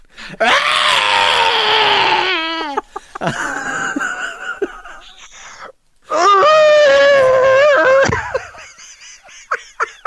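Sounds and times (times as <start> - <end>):
creature scream wailing and honking: 0.4 - 2.8, 6.1 - 8.1
laughter: 2.6 - 5.3, 7.8 - 10.0.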